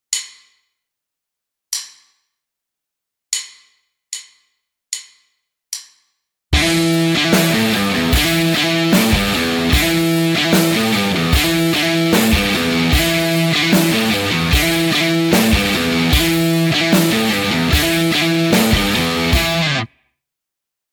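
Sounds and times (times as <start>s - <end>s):
guitar riff: 6.6s - 19.9s.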